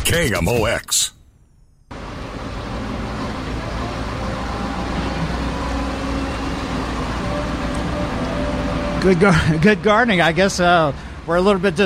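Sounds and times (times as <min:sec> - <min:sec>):
speech: 0:00.1 - 0:01.2, 0:09.0 - 0:11.8
heavy truck engines running outside a composting site: 0:01.9 - 0:11.8.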